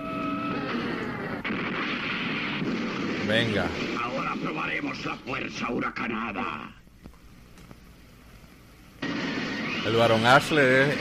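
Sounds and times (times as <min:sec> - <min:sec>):
robot firing a projectile in a video game: 0:00.7 - 0:04.5, 0:09.0 - 0:11.0
speech: 0:03.3 - 0:04.0, 0:04.9 - 0:06.8, 0:09.8 - 0:11.0.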